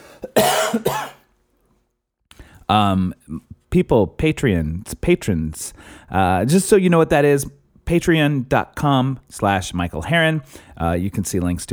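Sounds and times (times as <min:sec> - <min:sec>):
person coughing harshly: 0:00.0 - 0:01.2
speech: 0:02.7 - 0:11.7.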